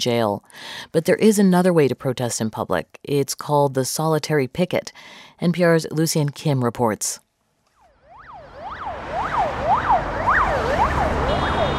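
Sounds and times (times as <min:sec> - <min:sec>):
speech: 0:00.0 - 0:07.2
emergency siren wailing in rapid up-and-down sweeps: 0:07.7 - 0:11.7
heavy morning rush-hour traffic on the Garden Ring Road in Moscow roaring: 0:07.9 - 0:11.7.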